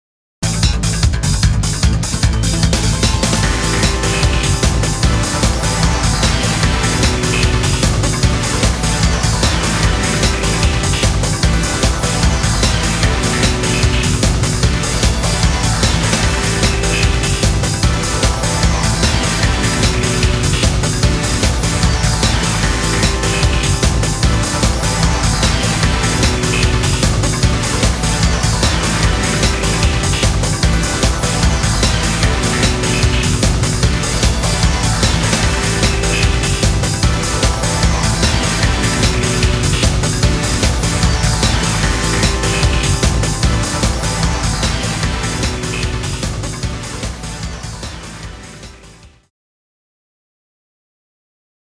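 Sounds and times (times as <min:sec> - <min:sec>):
digital rock background music: 0:00.4 - 0:49.2.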